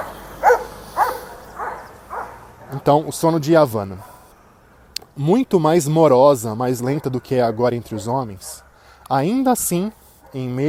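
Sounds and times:
dog barking: 0.0 - 2.8, 4.0 - 4.2, 6.8 - 8.8, 10.2 - 10.6
speech: 2.7 - 4.1, 5.2 - 10.6.

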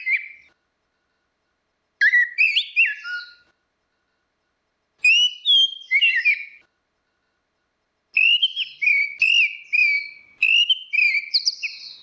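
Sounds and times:
Orange-headed thrush singing: 0.0 - 0.6, 2.0 - 3.6, 5.0 - 6.7, 8.1 - 12.0.

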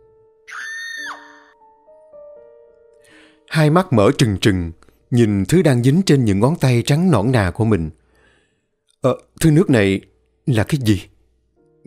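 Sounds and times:
woman screaming loudly: 0.5 - 1.5
speech: 3.5 - 8.0, 9.0 - 11.1.

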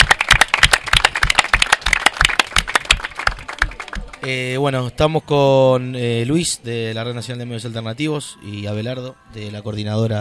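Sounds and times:
audience applause: 0.0 - 4.3
speech: 4.2 - 10.1.

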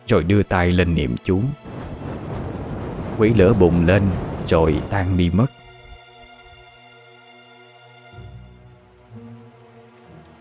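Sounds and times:
speech: 0.1 - 1.7, 3.2 - 5.5
heavy rain falling at night: 1.6 - 6.7, 8.2 - 10.3.

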